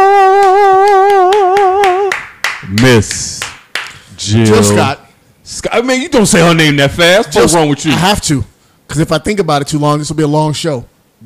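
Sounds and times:
applause-like rhythmic clapping: 0.0 - 4.8
speech: 2.9 - 3.3, 4.3 - 11.2.

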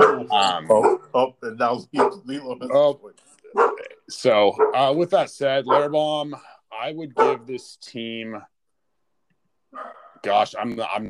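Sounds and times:
dog barking: 0.0 - 1.2, 2.0 - 2.3, 3.6 - 3.9, 4.6 - 4.9, 5.7 - 6.0, 7.2 - 7.5, 9.8 - 10.2
speech: 0.3 - 8.5, 9.7 - 11.0.

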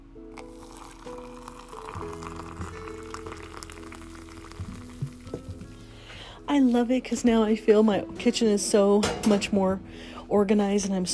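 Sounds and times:
coffee poured from a carafe: 0.3 - 5.8
speech: 6.5 - 11.1.

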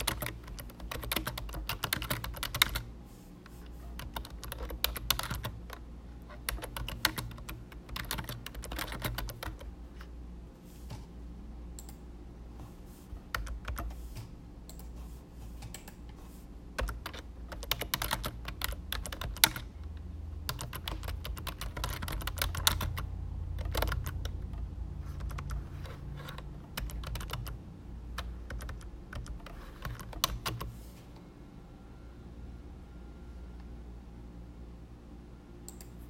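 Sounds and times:
computer keyboard typing: 0.0 - 2.9, 3.8 - 10.1, 11.8 - 12.0, 13.2 - 15.0, 16.8 - 30.8
low hum: 0.0 - 36.0.

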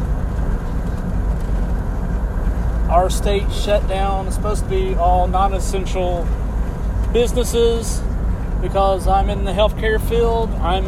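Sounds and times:
car engine and road noise while driving on the road: 0.0 - 10.8
speech: 2.9 - 6.4, 7.1 - 10.8.

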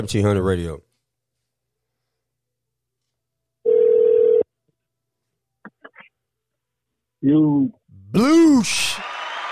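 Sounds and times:
speech: 0.0 - 0.9, 7.2 - 9.2
phone ringback tone buzz: 3.7 - 4.4.

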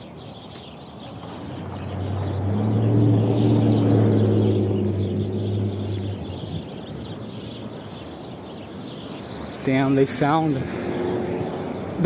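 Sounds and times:
flock of birds chirping in a tree: 0.0 - 12.0
low engine drone: 1.6 - 7.1
speech: 9.7 - 10.8.

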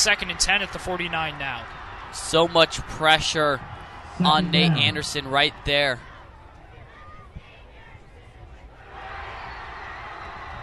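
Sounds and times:
speech: 0.0 - 6.1
stadium crowd at an American football game roaring: 2.7 - 6.1.

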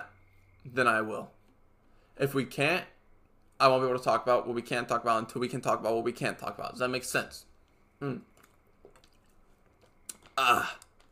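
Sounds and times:
speech: 0.6 - 1.4, 2.2 - 2.9, 3.6 - 8.3, 10.4 - 10.8
person sipping water with faint wet clicks: 8.1 - 11.0.

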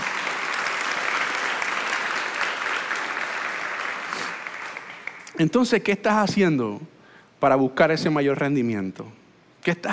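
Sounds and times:
audience applauding: 0.0 - 5.4
speech: 5.4 - 9.9.

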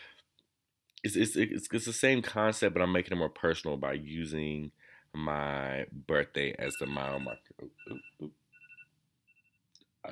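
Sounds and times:
speech: 1.0 - 8.4
phone alarm beeping: 6.6 - 9.6.

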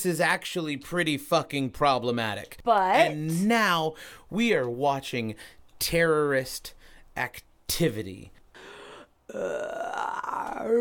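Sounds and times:
speech: 0.0 - 8.4, 9.3 - 10.8
long loud burp with wavering rising pitch: 9.3 - 10.8.

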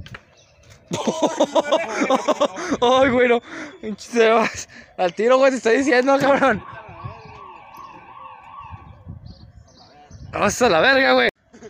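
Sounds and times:
laughter: 0.9 - 4.7, 6.0 - 6.9
speech: 0.9 - 6.8, 10.3 - 11.3
police patrol car siren wailing: 6.2 - 9.1.

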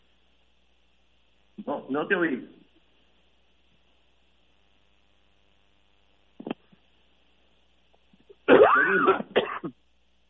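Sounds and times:
speech: 1.8 - 2.6
coughing into a handkerchief: 8.4 - 9.8
throat clearing: 8.5 - 9.8.

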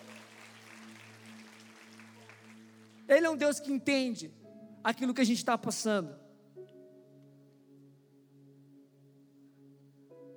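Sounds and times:
audience applauding during a sermon: 0.0 - 3.2
speech: 3.1 - 6.2.

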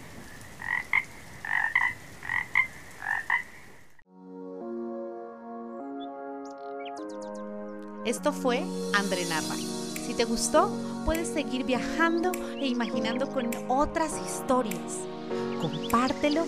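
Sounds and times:
toads croaking in raspy paired calls: 0.6 - 3.8
soft sustained melody: 4.1 - 16.4
speech: 8.1 - 16.4.

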